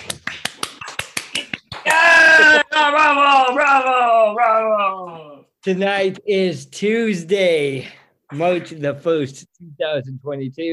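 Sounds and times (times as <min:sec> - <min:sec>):
quick sharp snaps: 0:00.0 - 0:02.0
person mock screaming and jeering: 0:01.8 - 0:05.4
speech: 0:05.6 - 0:10.7.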